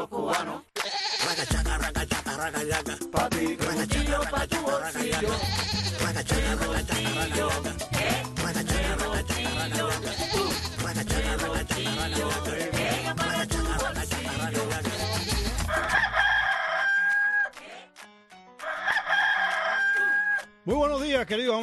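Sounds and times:
thumping rhythmic music: 0.2 - 16.3, 20.6 - 21.6
speech: 2.4 - 7.6, 20.8 - 21.6
rooster crowing: 15.0 - 17.6, 18.6 - 20.5.

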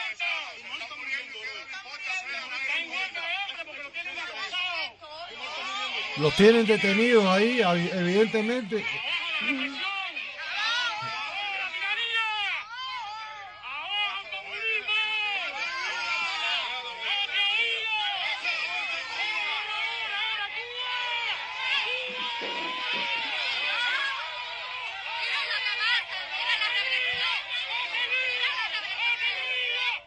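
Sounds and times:
street protest crowd shouting and chattering: 0.0 - 30.0
speech: 6.2 - 9.9
laughter: 6.2 - 10.1, 21.6 - 24.2.

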